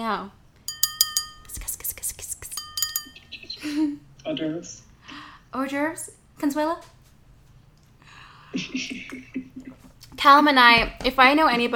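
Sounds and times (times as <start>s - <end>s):
speech: 0.0s - 0.4s, 3.6s - 4.8s, 5.5s - 7.0s, 8.5s - 11.7s
wine glasses clinking in a toast: 0.7s - 1.8s, 2.6s - 3.4s.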